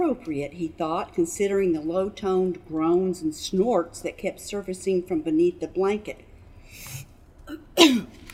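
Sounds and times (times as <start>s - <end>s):
speech: 0.1s - 8.2s
person sneezing: 6.9s - 8.2s.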